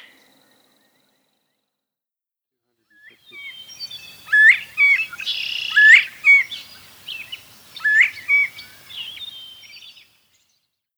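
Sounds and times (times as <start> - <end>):
Northern Bobwhite calling: 3.3 - 10.0.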